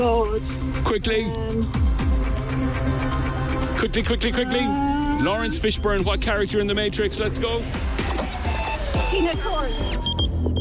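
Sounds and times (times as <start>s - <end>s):
speech: 0.0s - 1.9s, 3.8s - 7.9s, 9.1s - 10.1s
excited voices shouting: 2.8s - 5.8s
quiz time-up buzzer blaring in a shrill electronic tone: 7.2s - 10.5s.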